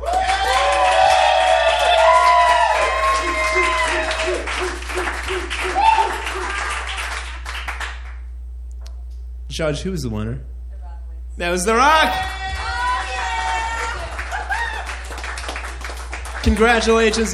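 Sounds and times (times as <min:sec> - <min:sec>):
crowd applauding: 0:00.0 - 0:08.2, 0:12.1 - 0:17.3
laughter: 0:02.0 - 0:07.3, 0:13.2 - 0:15.8
speech: 0:09.6 - 0:10.6, 0:11.4 - 0:12.4, 0:16.4 - 0:17.3.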